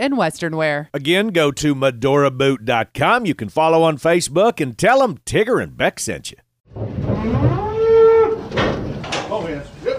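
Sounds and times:
speech: 0:00.0 - 0:07.5
clattering: 0:06.7 - 0:09.7
cow mooing: 0:07.0 - 0:08.6.

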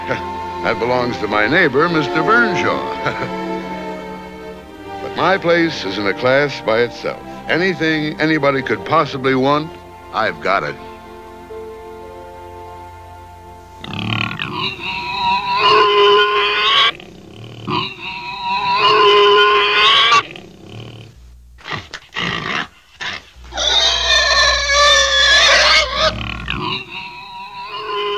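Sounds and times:
speech: 0:00.1 - 0:03.5, 0:05.2 - 0:10.9
pig squealing: 0:13.8 - 0:28.1.

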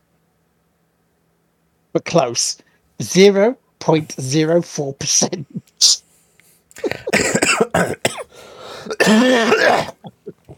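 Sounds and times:
speech: 0:01.9 - 0:06.0, 0:09.1 - 0:10.2
person coughing in a harsh fit: 0:06.8 - 0:10.5.

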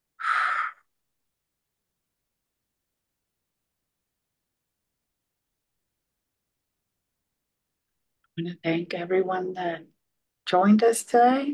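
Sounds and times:
deep exhale during guided breathing exercise: 0:00.2 - 0:00.9
speech: 0:08.4 - 0:11.5.

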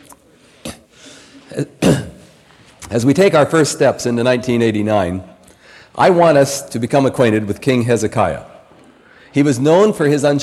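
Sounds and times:
speech: 0:01.5 - 0:02.0, 0:02.9 - 0:05.3, 0:06.0 - 0:08.5, 0:09.3 - 0:10.4
person clearing throat: 0:01.5 - 0:02.4
person coughing: 0:01.5 - 0:02.4.

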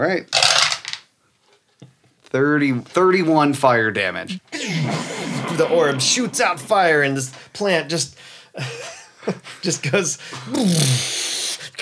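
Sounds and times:
speech: 0:00.0 - 0:00.4, 0:02.3 - 0:11.2
dice clattering across a hard tabletop: 0:00.3 - 0:01.1
laughter: 0:04.3 - 0:08.0, 0:08.6 - 0:10.2.

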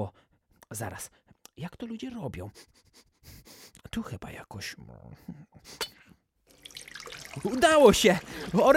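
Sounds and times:
speech: 0:00.0 - 0:05.9, 0:07.4 - 0:08.7
water running from a tap: 0:06.5 - 0:08.7.

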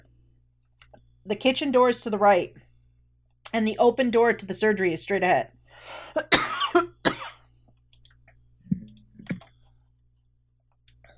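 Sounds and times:
speech: 0:01.2 - 0:02.6, 0:03.5 - 0:06.8
rasping coughs from a tickle in the throat: 0:06.2 - 0:07.4.

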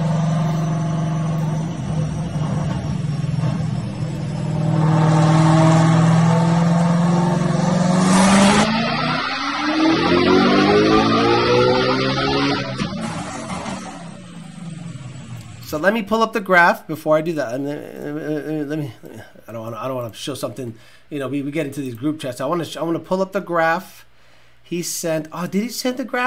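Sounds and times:
built car engine revving hard to high RPM: 0:00.0 - 0:15.8
speech: 0:15.8 - 0:26.2.

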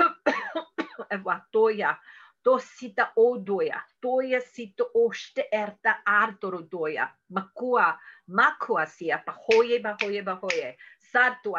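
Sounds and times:
person deliberately producing forced throaty coughs: 0:00.0 - 0:01.1
speech: 0:01.1 - 0:11.5.

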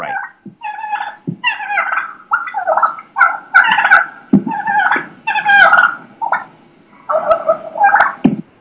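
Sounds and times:
wild turkeys purring and putting calls: 0:00.0 - 0:08.4
wild turkeys thumping and flapping on a decoy: 0:01.2 - 0:01.4, 0:04.3 - 0:05.1, 0:08.2 - 0:08.5.

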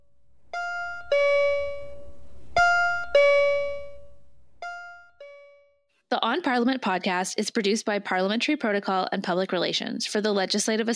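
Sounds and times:
bells ringing in two-note pairs: 0:00.6 - 0:05.6
speech: 0:06.2 - 0:10.9.

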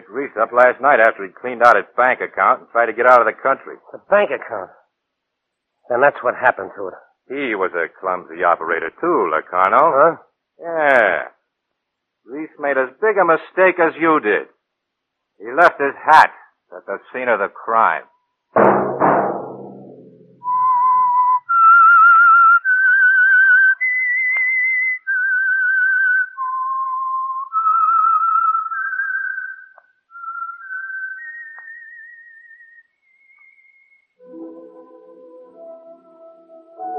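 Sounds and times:
speech: 0:00.1 - 0:04.8, 0:05.9 - 0:11.4, 0:12.2 - 0:14.6, 0:15.4 - 0:18.9
person whistling a slow eerie melody: 0:20.4 - 0:35.9, 0:36.8 - 0:36.9
soft orchestral music: 0:34.2 - 0:36.9.

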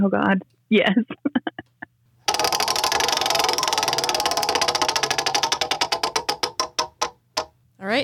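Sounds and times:
speech: 0:00.0 - 0:01.6, 0:07.8 - 0:08.0
prize wheel spun by hand ratcheting: 0:02.3 - 0:07.5.

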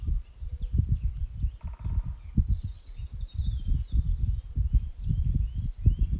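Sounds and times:
birdsong chirps and trills: 0:00.0 - 0:06.1
irregular low rumble of outdoor noise: 0:00.0 - 0:06.1.

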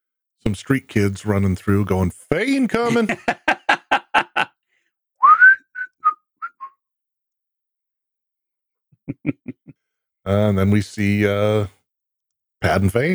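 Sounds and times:
speech: 0:00.4 - 0:03.4, 0:10.3 - 0:11.8, 0:12.6 - 0:13.1
laughter: 0:00.5 - 0:04.5, 0:09.0 - 0:09.7, 0:12.6 - 0:13.1
signal whistle: 0:05.2 - 0:06.7.

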